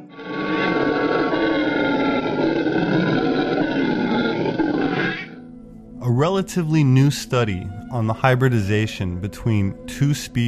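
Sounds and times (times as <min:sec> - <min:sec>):
howler monkey loud deep roaring howls: 0:00.1 - 0:05.4
speech: 0:06.3 - 0:10.4.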